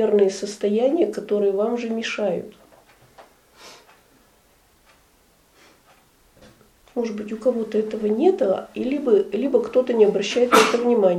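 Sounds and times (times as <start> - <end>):
speech: 0.0 - 2.6, 7.0 - 11.1
short sharp sneeze: 10.5 - 10.9.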